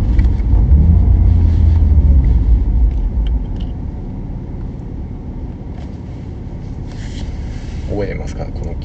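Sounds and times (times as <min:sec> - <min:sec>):
car exhaust bubbling and popping during gear changes: 0:00.0 - 0:04.8
car engine rumbling low and steady: 0:00.0 - 0:08.8.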